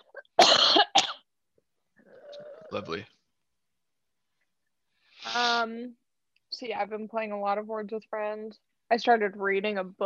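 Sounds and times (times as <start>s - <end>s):
dry coughing: 0.0s - 1.3s
speech: 2.7s - 3.2s, 5.4s - 6.0s, 6.6s - 10.0s.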